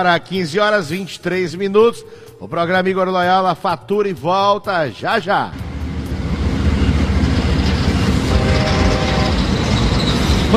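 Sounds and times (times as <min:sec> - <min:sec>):
speech: 0:00.0 - 0:05.7
passing train rumble as radio jingle sound effect: 0:05.5 - 0:10.5.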